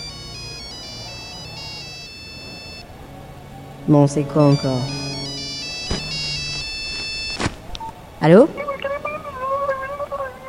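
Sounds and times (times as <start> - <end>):
mobile phone ringing with an electronic ringtone: 0.0 - 2.8, 4.3 - 7.4
speech: 3.9 - 5.0, 8.2 - 8.8.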